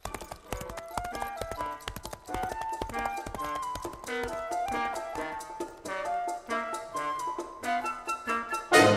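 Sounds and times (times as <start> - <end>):
horse hooves clip-clopping while walking: 0.0 - 8.9.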